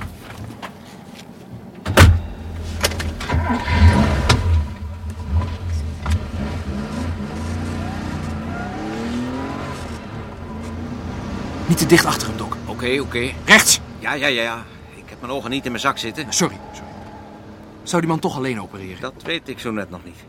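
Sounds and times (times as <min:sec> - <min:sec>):
car door thud: 0:01.9 - 0:03.4
car engine starting and revving as the vehicle pulls away: 0:02.3 - 0:19.2
speech: 0:11.9 - 0:12.2, 0:12.8 - 0:16.6, 0:17.9 - 0:20.2.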